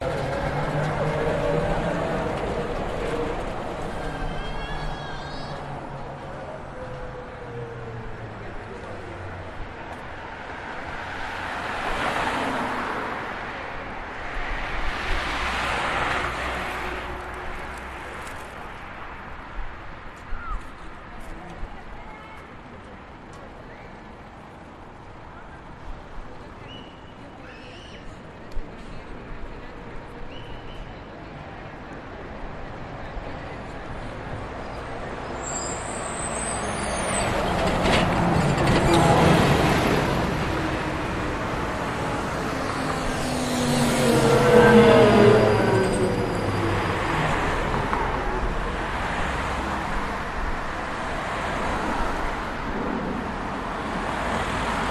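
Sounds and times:
distant walla of people: 0:00.0 - 0:11.8, 0:20.1 - 0:49.0
buses: 0:00.0 - 0:54.9
cars: 0:00.0 - 0:54.9
traffic in Budapest Hungary: 0:00.0 - 0:54.9.

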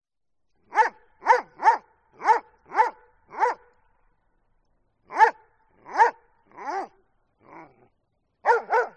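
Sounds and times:
Doberman barking: 0:00.7 - 0:03.7, 0:05.1 - 0:07.8, 0:08.4 - 0:08.9.

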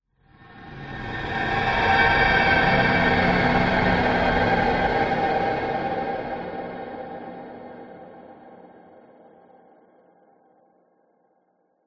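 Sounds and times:
ghostly horror swell pass-by drone: 0:00.4 - 0:09.1.

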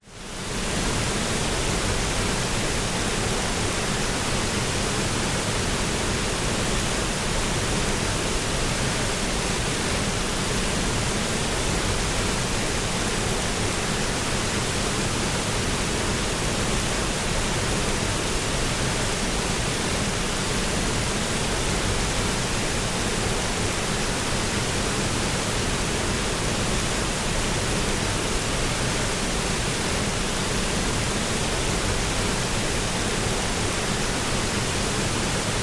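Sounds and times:
waterfall at Tegenungan in Bali Indonesia close up: 0:00.0 - 0:35.6.

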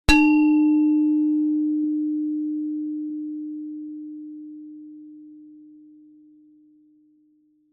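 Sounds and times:
gender gamelan single mallet hit mid low: 0:00.1 - 0:04.4.

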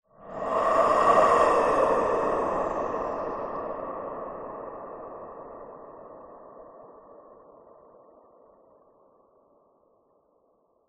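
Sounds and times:
horror ghost breathing with reverb: 0:00.1 - 0:08.2.

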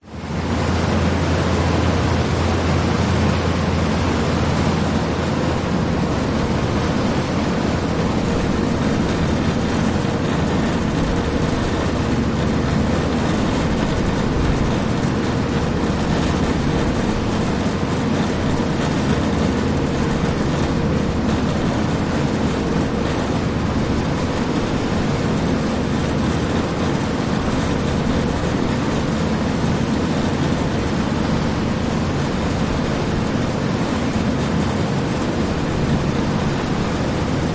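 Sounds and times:
car ferry engines: 0:00.0 - 0:37.5
car ferry wake: 0:00.0 - 0:37.5
waves: 0:00.0 - 0:37.5.

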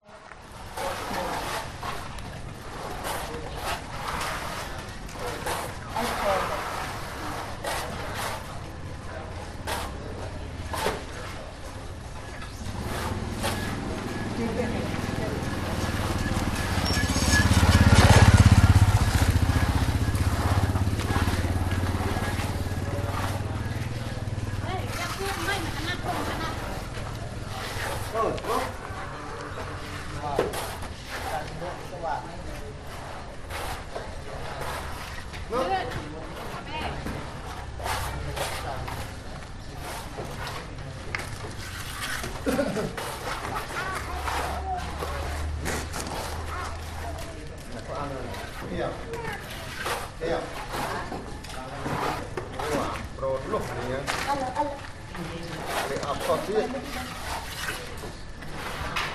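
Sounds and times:
house building construction noise in Cambodia: 0:00.0 - 0:59.1
occasional car on a street in Cambodia: 0:12.7 - 0:24.8
laughter: 0:42.4 - 0:43.2.

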